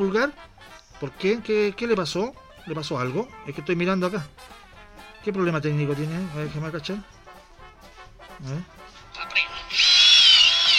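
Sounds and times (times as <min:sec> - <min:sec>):
speech: 0:00.0 - 0:04.6, 0:05.2 - 0:07.2, 0:08.4 - 0:09.5
power drill whirring with a high-pitched buzz: 0:09.8 - 0:10.7.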